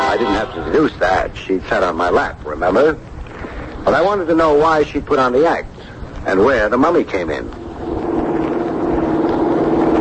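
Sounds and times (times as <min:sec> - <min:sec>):
speech: 0:00.1 - 0:03.1, 0:03.8 - 0:07.6
car engine droning while driving: 0:07.5 - 0:09.9.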